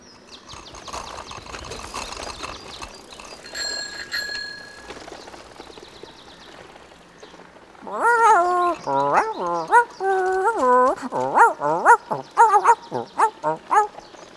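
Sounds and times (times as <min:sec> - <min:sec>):
rattling ticking outdoor noise: 0:00.1 - 0:14.3
bicycle bell ringing: 0:03.4 - 0:05.0
dog yipping and barking happily: 0:07.9 - 0:13.9.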